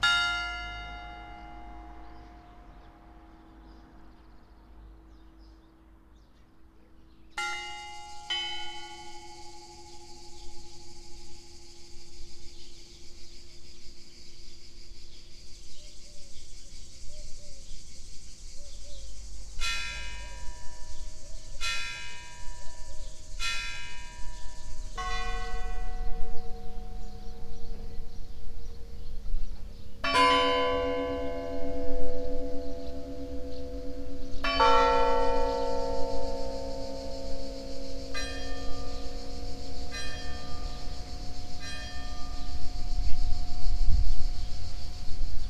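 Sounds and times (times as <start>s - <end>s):
composition for 12 church bell towers: 0.0s - 3.3s, 7.4s - 13.6s, 19.6s - 45.4s.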